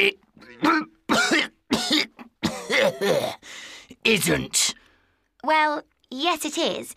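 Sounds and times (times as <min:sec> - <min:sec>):
speech: 0:00.0 - 0:00.9, 0:04.0 - 0:04.8, 0:05.4 - 0:06.9
harsh raspy coughs: 0:00.4 - 0:03.5.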